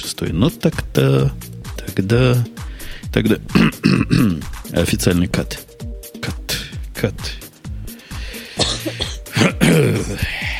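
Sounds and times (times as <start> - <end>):
speech: 0.2 - 5.7, 7.0 - 7.4
person with a very sore throat clearing throat: 3.5 - 4.5, 8.6 - 10.2
person with a very sore throat coughing: 3.5 - 4.5, 8.5 - 10.2.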